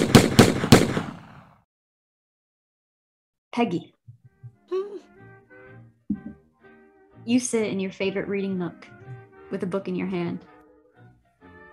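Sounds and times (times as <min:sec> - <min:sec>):
gunshots: 0:00.0 - 0:01.6
speech: 0:03.6 - 0:04.0, 0:07.2 - 0:10.5.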